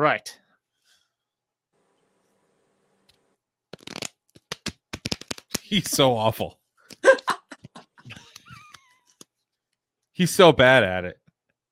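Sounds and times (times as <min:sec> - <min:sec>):
speech: 0:00.0 - 0:00.4, 0:05.7 - 0:07.2, 0:10.2 - 0:11.2
playing cards being shuffled with a chin: 0:03.7 - 0:06.2
laughter: 0:07.0 - 0:08.9.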